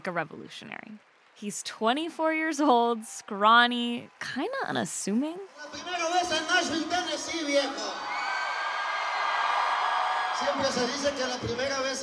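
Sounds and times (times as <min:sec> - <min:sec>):
speech: 0:00.0 - 0:08.2, 0:10.4 - 0:12.0
huge crowd of thousands roaring and cheering in a torrential rainstorm in Nashville Tennessee: 0:05.5 - 0:12.0
many voices whooping and shouting together: 0:07.3 - 0:12.0.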